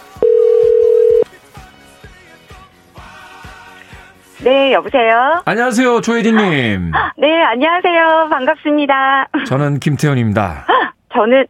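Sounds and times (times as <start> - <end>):
soft music with a steady beat: 0.0 - 8.6
ringback tone of an outgoing phone call: 0.1 - 1.2
speech: 4.4 - 11.4
laughter: 5.9 - 7.1.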